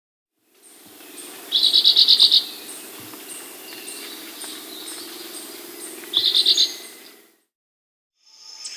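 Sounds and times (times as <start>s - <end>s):
Rufous-bellied Euphonia calling in South America: 0.6s - 7.3s.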